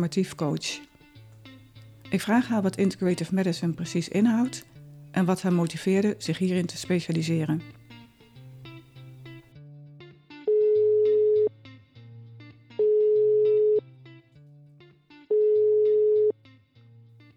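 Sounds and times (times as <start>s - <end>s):
speech: 0.0s - 0.9s, 2.1s - 7.8s
telephone ringing tone as a call is placed: 10.5s - 11.5s, 12.8s - 13.8s, 15.3s - 16.3s.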